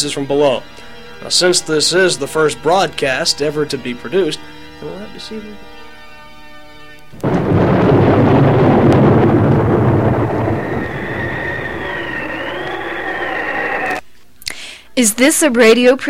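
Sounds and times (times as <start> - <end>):
speech: 0.0 - 5.8, 15.0 - 16.0
celestial gongs struck with shimmering tones: 7.2 - 14.0
sudden loud thunderclap with long rolling rumble: 7.2 - 14.0
windy roar of a fresh to moderate northwest wind: 7.2 - 14.0.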